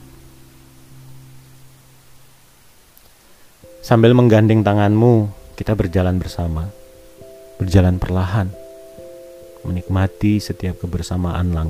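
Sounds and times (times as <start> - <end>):
faint low hum: 0.0 - 11.6
soft steady wind blowing outdoors in a park: 0.0 - 11.6
speech: 3.8 - 6.8, 7.6 - 8.6, 9.6 - 11.6.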